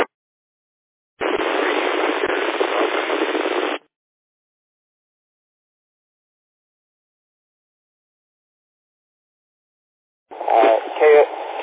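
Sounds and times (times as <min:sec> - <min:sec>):
harsh burst of radio static from a garbled transmission on a handheld radio: 0:01.2 - 0:03.8, 0:10.3 - 0:11.6
thin tinny voice over the radio: 0:10.3 - 0:11.6.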